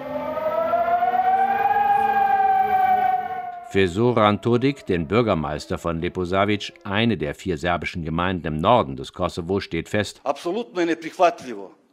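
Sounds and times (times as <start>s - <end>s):
civil defense siren wailing in a city: 0.0s - 6.8s
speech: 3.7s - 11.9s.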